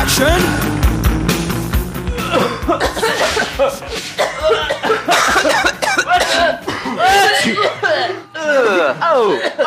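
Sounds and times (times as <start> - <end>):
speech: 0.2 - 0.7
many people coughing on a set: 2.0 - 9.6
people chuckling: 2.1 - 9.6.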